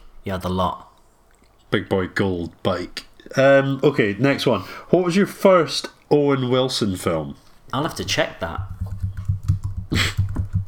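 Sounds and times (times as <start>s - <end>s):
speech: 0.2s - 0.9s, 1.7s - 8.8s, 9.9s - 10.2s
rapid keyboard typing: 8.6s - 10.6s.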